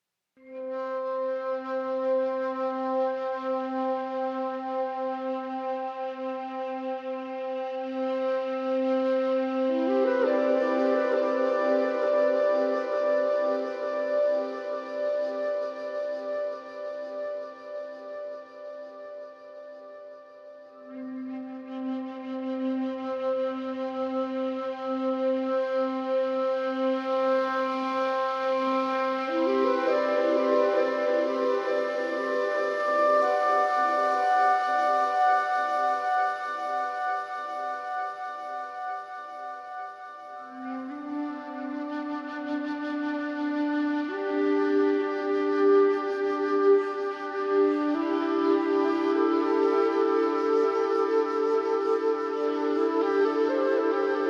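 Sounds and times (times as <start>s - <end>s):
flute with echo: 0.4s - 54.2s.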